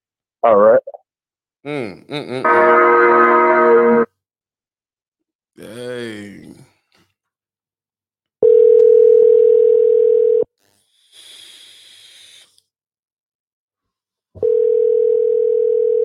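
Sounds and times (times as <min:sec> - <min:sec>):
speech: 0:00.4 - 0:00.9, 0:01.6 - 0:04.0
ringback tone of a phone call: 0:08.4 - 0:10.5, 0:14.4 - 0:16.0
short burst of hiss: 0:10.8 - 0:12.6.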